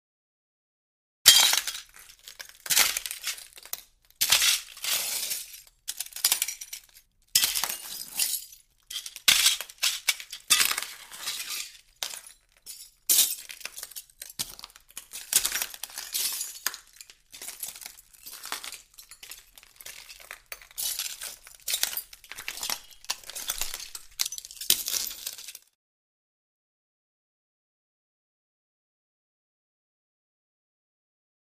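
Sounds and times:
footsteps on broken glass: 0:01.3 - 0:25.8.

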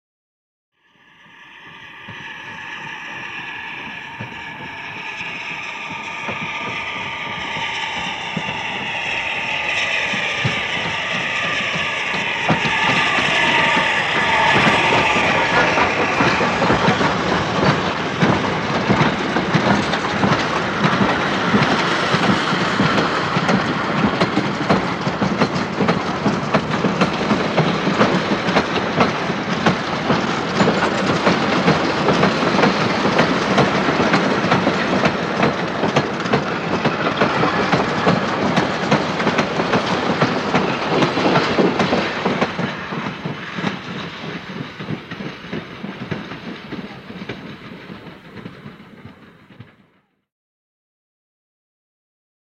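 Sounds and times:
slow steam train: 0:00.8 - 0:50.2.

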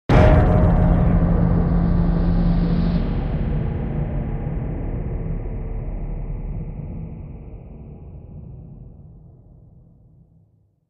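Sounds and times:
deep metallic impact: 0:00.1 - 0:07.4.

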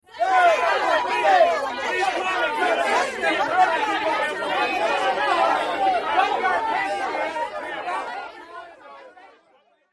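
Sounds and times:
reporters yelling questions: 0:00.1 - 0:09.0.

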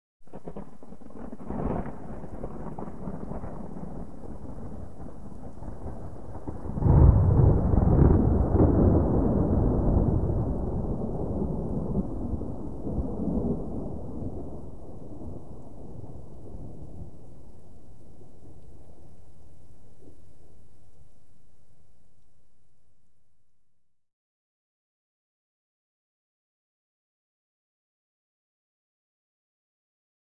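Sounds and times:
close thunder crack: 0:00.3 - 0:17.6.

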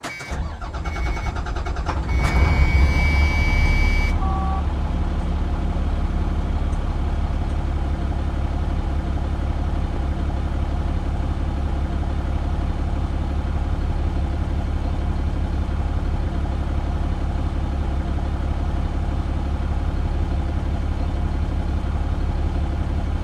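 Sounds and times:
school bus starting and idling: 0:00.0 - 0:23.2.

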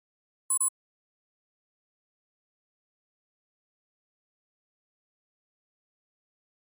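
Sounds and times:
double electronic flash beep: 0:00.5 - 0:00.7.

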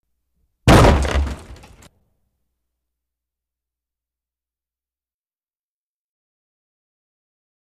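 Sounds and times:
hockey puck hitting rink boards: 0:00.7 - 0:01.9.

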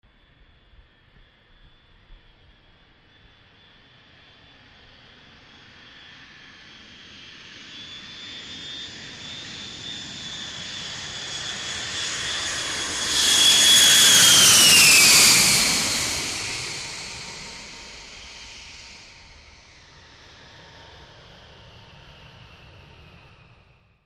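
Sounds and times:
landing jet passing low: 0:05.4 - 0:23.9.

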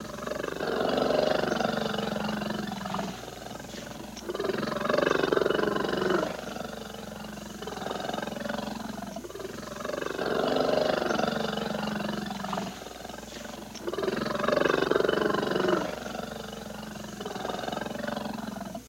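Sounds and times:
bear purring growl: 0:00.0 - 0:18.8.

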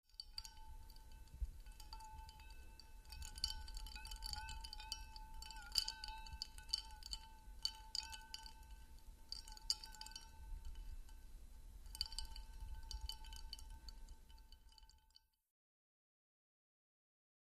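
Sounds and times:
ice swirling in a cocktail: 0:00.3 - 0:11.2, 0:11.9 - 0:15.0.

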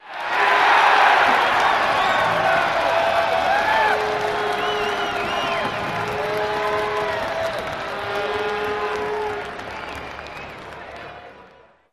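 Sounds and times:
horns in an outdoor stadium crowd: 0:00.0 - 0:11.6
large crowd cheering for a touchdown in an outdoor stadium: 0:00.0 - 0:11.9.

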